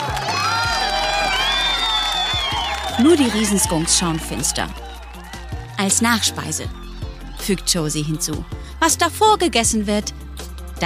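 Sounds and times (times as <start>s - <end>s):
group cheering and whooping: 0.0s - 8.5s
speech: 3.0s - 4.8s, 5.8s - 6.8s, 7.4s - 10.2s.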